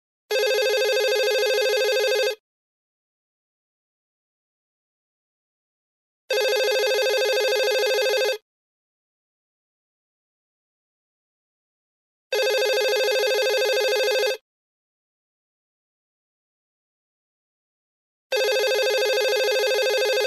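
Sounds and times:
telephone electronic ringing: 0.3 - 2.4, 6.3 - 8.4, 12.3 - 14.4, 18.3 - 20.2.

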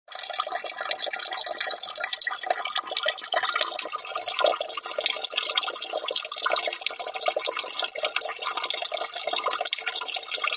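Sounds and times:
water running into a sink: 0.1 - 10.5.

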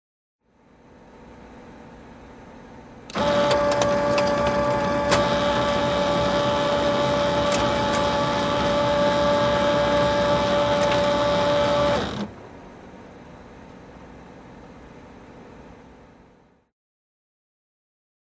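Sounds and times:
scanner copying: 3.1 - 12.4.

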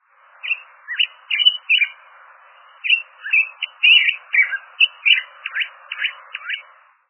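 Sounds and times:
ringing-voiced chirping of hawfinch: 0.4 - 2.0, 2.6 - 6.8.

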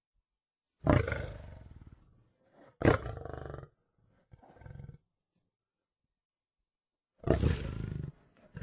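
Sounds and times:
lion roaring: 0.8 - 5.0, 7.2 - 8.6.

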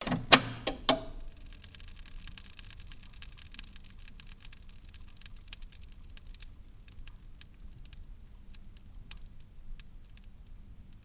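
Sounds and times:
old television switching off: 0.0 - 1.6
static electricity crackling: 0.9 - 10.4.

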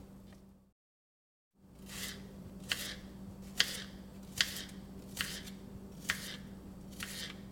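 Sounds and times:
knife chopping food on cutting board in kitchen: 1.9 - 7.4.

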